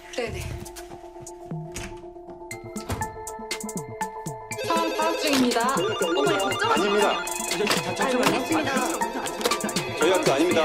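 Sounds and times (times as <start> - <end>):
speech: 0.2 - 0.9, 5.3 - 10.6
several telephones with electronic ringtones ringing: 4.5 - 10.6.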